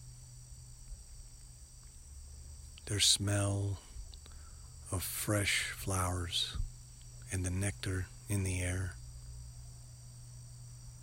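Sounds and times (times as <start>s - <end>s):
high-pitched insect trill: 0.0s - 11.0s
bees buzzing: 2.7s - 11.0s
speech: 2.9s - 3.9s, 4.9s - 6.7s, 7.3s - 9.0s.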